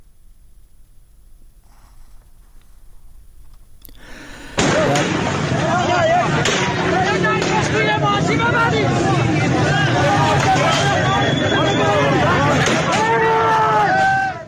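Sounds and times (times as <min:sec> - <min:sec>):
gunshots: 0:04.5 - 0:07.9
protest crowd roaring and shouting: 0:04.6 - 0:14.4.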